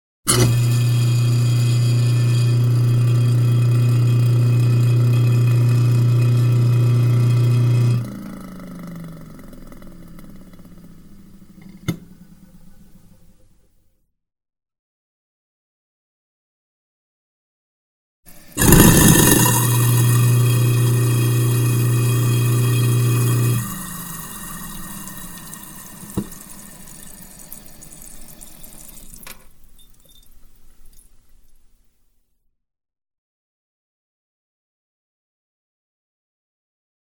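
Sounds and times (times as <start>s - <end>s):
grinding wheel: 0.3s - 11.8s, 18.6s - 27.0s.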